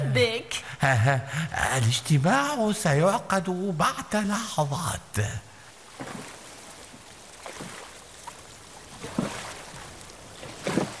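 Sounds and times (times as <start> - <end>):
speech: 0.2 - 6.3
boat moving over water: 5.7 - 10.9.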